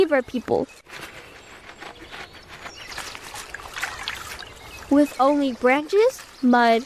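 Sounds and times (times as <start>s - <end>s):
speech: 0.0s - 1.2s, 4.9s - 6.8s
flowing river water: 3.0s - 6.8s.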